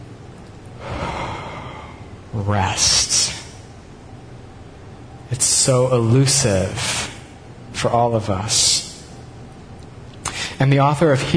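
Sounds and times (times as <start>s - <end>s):
deep breath drawn in unison with a leader: 0.8s - 2.2s
speech: 2.3s - 3.2s, 5.3s - 7.0s, 7.8s - 8.9s, 10.6s - 11.3s.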